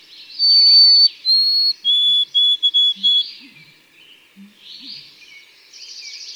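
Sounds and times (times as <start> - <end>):
white-throated sparrow song: 0.0 - 3.7.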